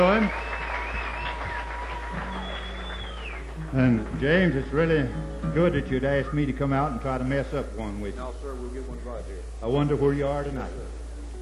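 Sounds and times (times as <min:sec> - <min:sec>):
speech: 0:00.0 - 0:00.5, 0:03.7 - 0:11.0
audience applauding a young bluegrass group: 0:00.0 - 0:05.2.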